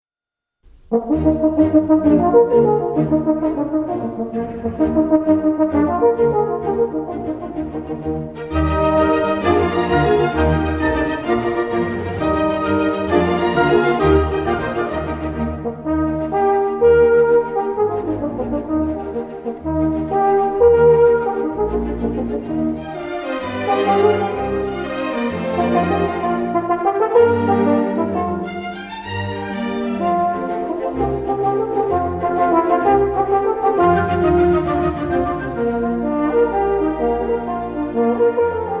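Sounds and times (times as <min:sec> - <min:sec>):
concerto: 0:00.7 - 0:38.7.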